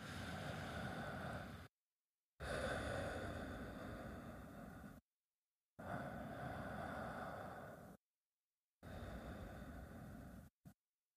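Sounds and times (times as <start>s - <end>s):
slow deep breathing in and out: 0.0s - 1.8s, 2.4s - 5.1s, 5.8s - 8.0s, 8.8s - 10.8s.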